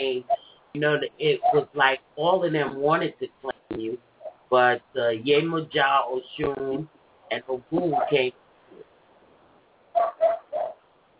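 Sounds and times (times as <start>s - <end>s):
speech: 0.1s - 8.4s
dog barking: 10.0s - 10.8s.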